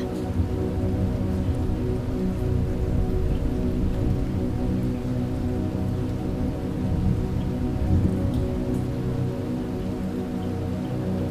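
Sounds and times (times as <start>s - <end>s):
deep continuous rumble of thunder: 0.0s - 10.4s
heavy rain pouring: 0.0s - 11.2s.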